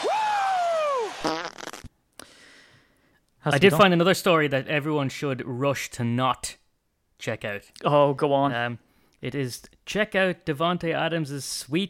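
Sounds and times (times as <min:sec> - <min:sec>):
loud drawn-out fart sound effect with squeaky pitch: 0:01.0 - 0:02.0
speech: 0:03.4 - 0:06.6, 0:07.2 - 0:11.8.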